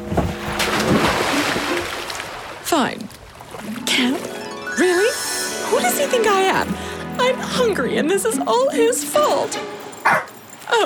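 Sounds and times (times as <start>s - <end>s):
water churning and splashing around a small towed craft: 0.0s - 7.4s
speech: 2.7s - 3.1s, 3.9s - 5.2s, 5.8s - 10.8s.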